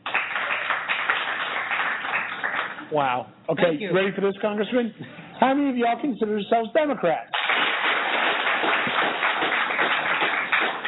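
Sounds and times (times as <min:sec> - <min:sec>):
audience clapping at a college campus event: 0:00.0 - 0:02.9, 0:07.3 - 0:10.8
speech: 0:02.9 - 0:07.3.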